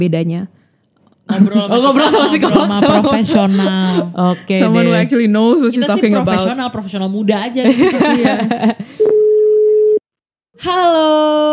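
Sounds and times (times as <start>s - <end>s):
speech: 0.0s - 0.6s, 1.3s - 9.0s, 10.6s - 11.5s
laughter: 1.3s - 9.1s
telephone ringing tone on an outgoing call: 9.0s - 10.0s.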